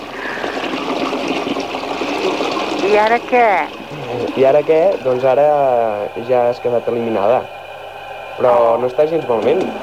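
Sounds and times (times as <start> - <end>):
loud steady rush of splashing water: 0.0 - 5.6
speech: 2.9 - 7.6, 8.4 - 9.8.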